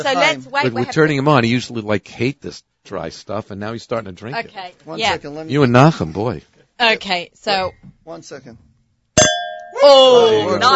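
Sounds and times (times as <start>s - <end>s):
speech: 0.0s - 8.7s, 9.8s - 10.7s
wine glasses of white wine clinking in a toast: 9.2s - 9.8s.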